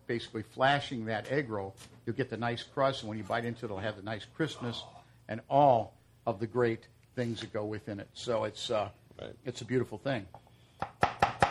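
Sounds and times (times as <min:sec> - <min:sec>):
speech: 0:00.1 - 0:11.0
chef's knife chopping food on a board: 0:10.8 - 0:11.4.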